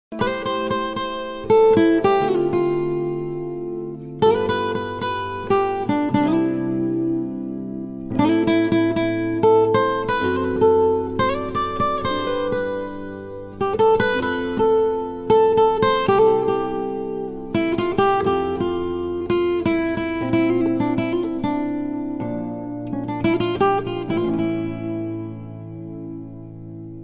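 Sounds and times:
guitar instrumental ringtone: 0.1 - 27.0.

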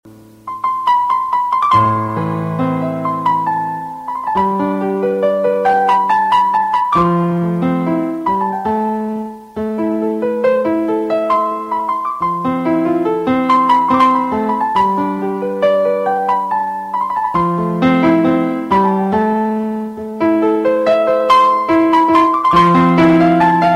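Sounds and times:
slow soft classical piano: 0.1 - 23.7.

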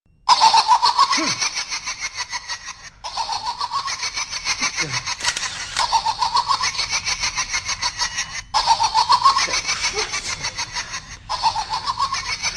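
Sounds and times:
saw laughter: 0.3 - 12.5.

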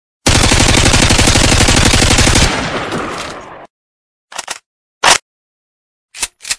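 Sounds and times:
M4A1 rifle gunshots: 0.3 - 3.7.

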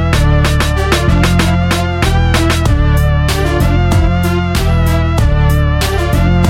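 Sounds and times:
rock guitar beat ringtone: 0.1 - 6.4.

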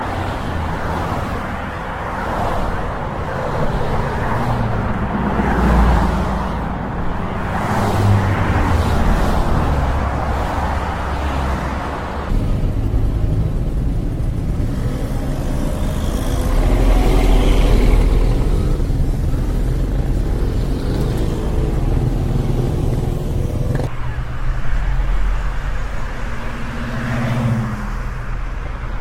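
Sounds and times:
traffic: 0.0 - 29.0.

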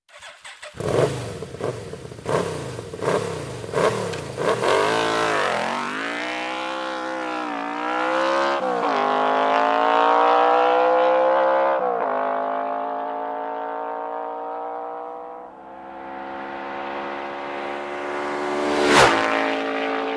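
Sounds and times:
Yamaha 1200 VMAX motorcycle engine: 0.1 - 20.1.

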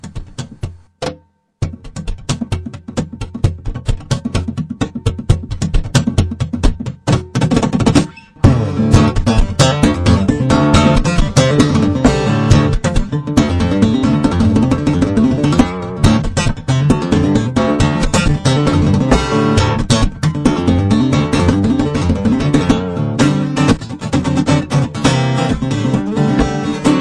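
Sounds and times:
guitar playing: 1.7 - 26.9.

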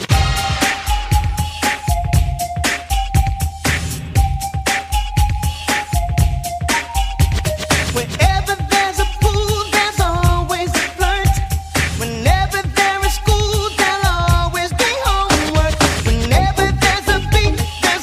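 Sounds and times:
song: 0.1 - 18.0.

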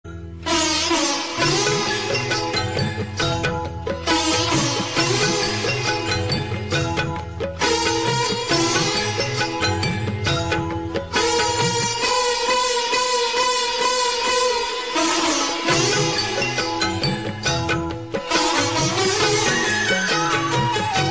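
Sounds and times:
Indian classical music: 0.1 - 21.0.

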